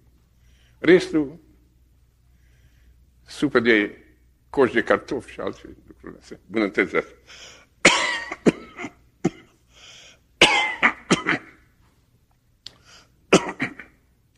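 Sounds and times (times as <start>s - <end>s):
speech: 0.8s - 1.4s, 3.4s - 7.6s
person coughing harshly: 7.8s - 9.6s, 10.4s - 11.6s, 13.3s - 14.0s.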